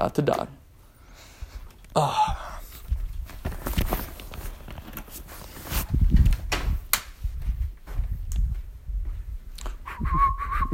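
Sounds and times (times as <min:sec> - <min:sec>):
speech: 0:00.0 - 0:00.6, 0:02.0 - 0:02.4
shuffling movement: 0:02.6 - 0:09.8
footsteps: 0:02.7 - 0:10.0
person whistling a short clear tone: 0:09.8 - 0:10.7.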